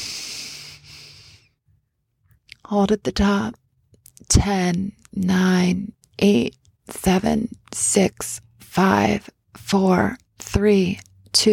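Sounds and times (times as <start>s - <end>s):
deep breath in during a guided breathing exercise: 0.0s - 1.6s
speech: 2.7s - 3.6s, 4.2s - 11.5s.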